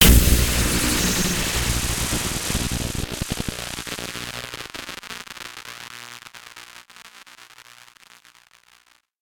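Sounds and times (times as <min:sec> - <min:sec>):
magic spell electricity impact: 0:00.0 - 0:04.6.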